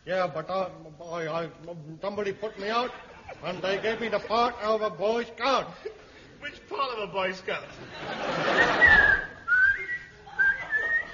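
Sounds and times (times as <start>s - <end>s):
speech: 0.1s - 9.2s
laughter: 2.4s - 4.8s, 7.6s - 11.1s
shrill whistle bursts gliding slightly in pitch: 8.6s - 11.1s.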